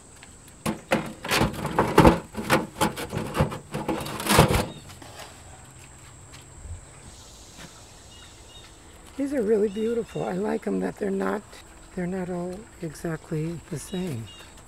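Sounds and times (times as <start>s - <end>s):
heavy thick metal door scraped and clanked over a brick bread oven: 0.6s - 4.9s
speech: 9.2s - 14.4s.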